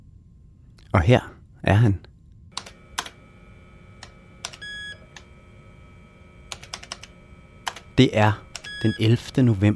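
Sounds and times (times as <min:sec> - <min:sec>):
speech: 0:00.9 - 0:02.1, 0:08.0 - 0:09.7
clattering keystrokes on a personal computer keyboard: 0:02.6 - 0:03.2, 0:06.5 - 0:07.8.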